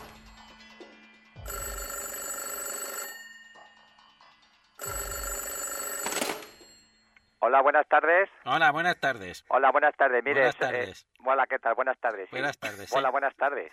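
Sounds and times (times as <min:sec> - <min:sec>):
telephone ringing with electronic bell tone: 0:01.4 - 0:04.0, 0:04.8 - 0:07.6
speech: 0:07.4 - 0:13.7.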